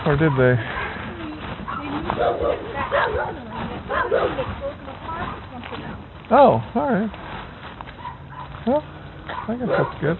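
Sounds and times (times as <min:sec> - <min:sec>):
dog barking and yipping: 0:00.0 - 0:01.0, 0:01.6 - 0:05.4, 0:08.0 - 0:08.6, 0:09.3 - 0:10.1
voices murmuring: 0:00.0 - 0:10.1
speech: 0:00.1 - 0:00.8, 0:02.0 - 0:07.3, 0:08.6 - 0:10.1.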